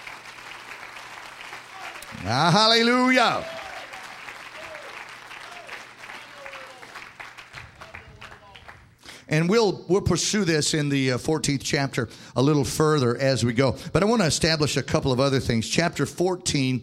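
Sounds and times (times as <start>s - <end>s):
congregation clapping hands in a large room: 0.0s - 9.0s
person exclaiming loudly: 1.8s - 3.9s
speech: 2.1s - 3.6s, 9.3s - 16.8s.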